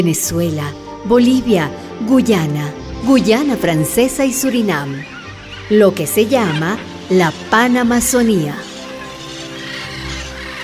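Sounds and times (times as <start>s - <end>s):
speech: 0.0s - 5.1s, 5.7s - 8.7s
flock of parrots squawking over a forest: 4.0s - 10.6s.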